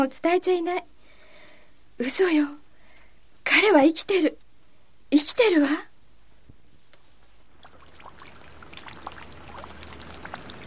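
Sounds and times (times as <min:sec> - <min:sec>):
speech: 0:00.0 - 0:00.9, 0:02.0 - 0:02.6, 0:03.4 - 0:04.4, 0:05.1 - 0:05.9
soft steady rain at a graveside: 0:07.5 - 0:10.6.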